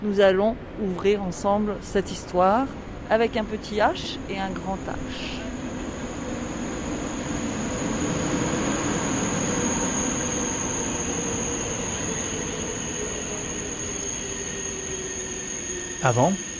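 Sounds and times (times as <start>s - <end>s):
speech: 0.0s - 5.5s, 16.0s - 16.5s
train rumbling through a railway station: 0.6s - 16.5s
train wheels grinding and squealing against the rails: 5.1s - 16.5s.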